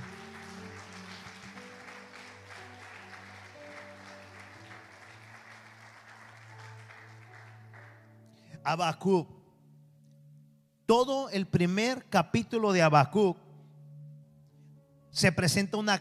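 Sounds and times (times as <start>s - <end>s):
audience applauding: 0.0s - 8.1s
speech: 8.6s - 9.4s, 10.9s - 13.4s, 15.2s - 15.9s.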